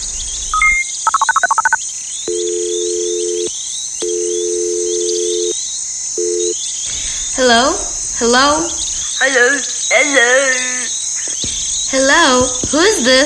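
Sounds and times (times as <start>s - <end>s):
crickets chirping: 0.0s - 13.2s
telephone dialing beeps: 0.6s - 5.5s
steady electronic telephone tone while placing a call: 0.6s - 5.6s, 6.2s - 6.6s
speech: 7.4s - 10.7s, 11.9s - 13.2s.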